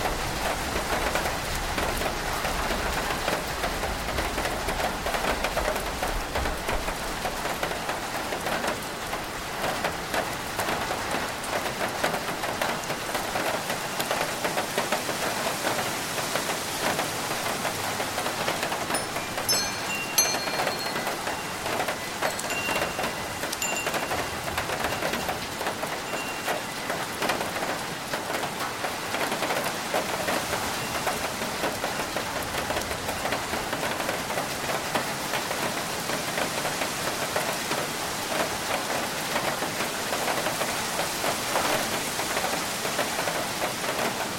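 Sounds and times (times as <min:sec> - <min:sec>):
rain pattering on a tin roof: 0:00.0 - 0:44.3
faint high ringing tones: 0:18.9 - 0:27.1.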